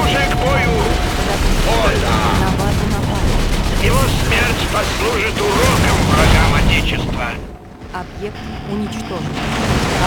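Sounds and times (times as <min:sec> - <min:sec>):
video-game gunfire: 0:00.0 - 0:07.4
video-game explosive booms: 0:00.0 - 0:10.0
speech: 0:08.0 - 0:09.8.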